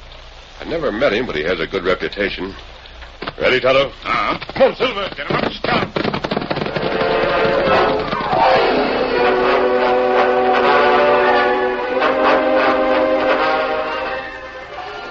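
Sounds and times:
speech: 0:00.6 - 0:02.7, 0:03.4 - 0:06.1
constant rumbling crackling rush of noise: 0:03.3 - 0:12.0
wailing locomotive whistle of a work train arriving on the main track: 0:06.8 - 0:15.0.

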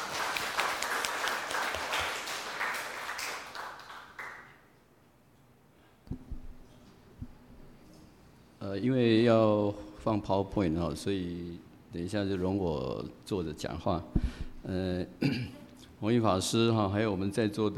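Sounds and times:
audience applauding: 0:00.0 - 0:04.6
soft thumps of a microphone being handled: 0:06.1 - 0:06.6
speech: 0:08.7 - 0:17.7.

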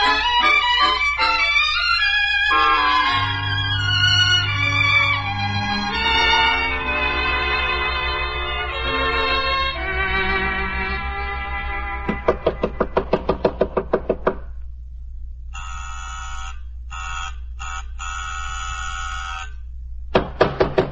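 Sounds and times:
low steady hum: 0:00.0 - 0:20.8
loud insistent knocking on an apartment door: 0:12.1 - 0:14.5, 0:20.1 - 0:20.8
harsh door buzzer blasts: 0:15.5 - 0:19.6.

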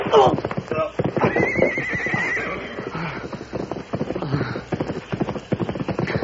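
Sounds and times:
horse hooves clip-clopping: 0:00.0 - 0:06.2
horse neighing with a loud high whinny: 0:00.8 - 0:03.2.

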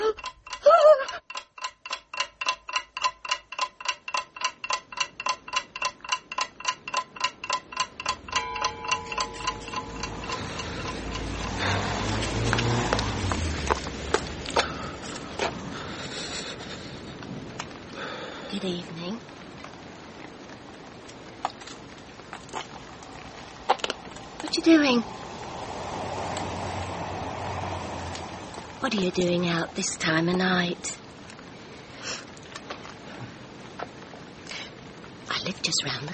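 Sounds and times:
clock ticking: 0:00.0 - 0:14.6
rushing windy noise: 0:06.5 - 0:32.4
speech: 0:29.1 - 0:31.0.

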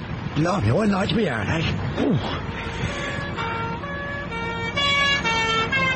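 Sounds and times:
road traffic rumble: 0:00.0 - 0:05.9
speech: 0:00.4 - 0:03.5
police car siren wailing in alternating two-tone pattern: 0:02.0 - 0:05.9.

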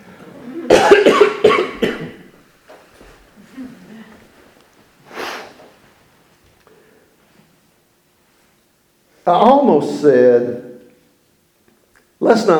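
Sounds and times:
harsh coughing after choking on a cough drop: 0:00.6 - 0:02.4
speech: 0:09.3 - 0:10.6, 0:12.2 - 0:12.5.

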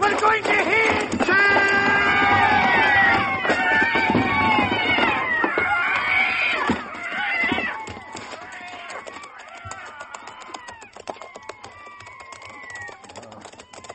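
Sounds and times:
speech: 0:00.1 - 0:00.8
chorus of many cats yowling and screeching: 0:01.2 - 0:13.9.

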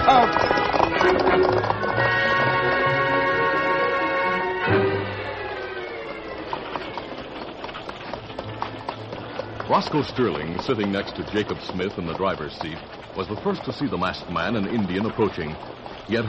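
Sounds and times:
music: 0:00.0 - 0:06.8
hoofbeats of a giant white horse being ridden: 0:00.0 - 0:16.2
speech: 0:09.8 - 0:16.2.

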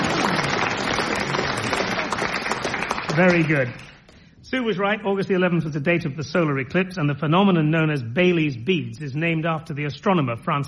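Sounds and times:
studio audience clapping: 0:00.0 - 0:04.0
speech: 0:03.2 - 0:03.8, 0:04.5 - 0:10.6.

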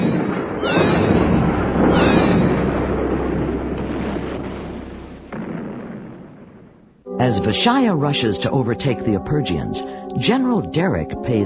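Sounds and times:
spaceship cannons firing on a planet: 0:00.0 - 0:07.0
long dense rumbling roar: 0:01.0 - 0:06.2
speech: 0:07.3 - 0:11.4.

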